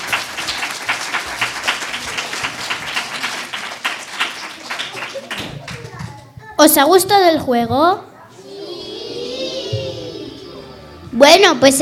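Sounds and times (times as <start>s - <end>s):
audience applauding for children: 0.0s - 6.3s
speech: 6.6s - 8.1s, 11.2s - 11.8s.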